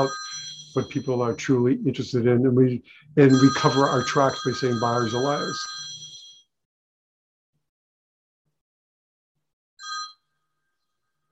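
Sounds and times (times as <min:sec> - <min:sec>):
speech: 0:00.0 - 0:00.2, 0:00.8 - 0:05.8
electronic phone ringing: 0:00.0 - 0:01.5, 0:03.2 - 0:06.4, 0:09.8 - 0:10.3.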